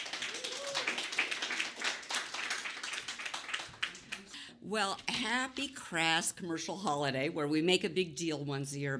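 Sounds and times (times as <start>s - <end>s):
audience applauding: 0.0s - 4.3s
speech: 4.7s - 8.9s.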